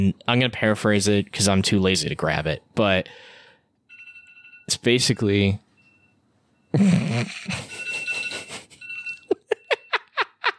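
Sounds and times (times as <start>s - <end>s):
speech: 0.0s - 3.4s, 4.7s - 5.6s, 6.7s - 7.8s
electronic alarm jingle: 5.7s - 10.2s.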